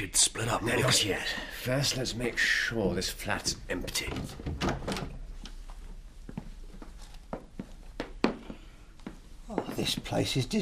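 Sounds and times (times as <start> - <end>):
speech: 0.0 - 5.2, 9.8 - 10.6
door creaking open: 4.0 - 5.2.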